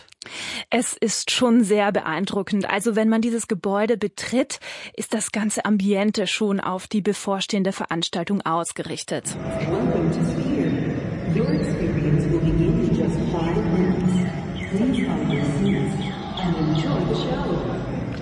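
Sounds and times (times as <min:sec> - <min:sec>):
speech: 0:00.7 - 0:10.4, 0:16.5 - 0:17.8
birds chirping and twittering indoors: 0:09.4 - 0:18.2.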